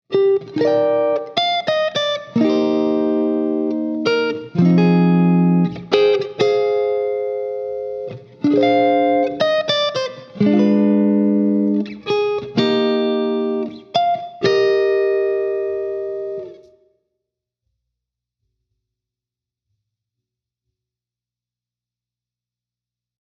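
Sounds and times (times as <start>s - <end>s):
electric guitar played with neck pickups: 0.1s - 16.8s.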